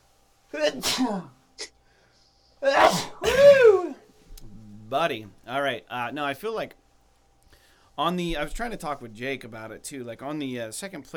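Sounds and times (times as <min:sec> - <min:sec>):
speech: 0:00.5 - 0:01.7, 0:02.6 - 0:03.4, 0:04.9 - 0:06.8, 0:08.0 - 0:11.1
person sneezing: 0:00.5 - 0:01.8, 0:02.6 - 0:04.1.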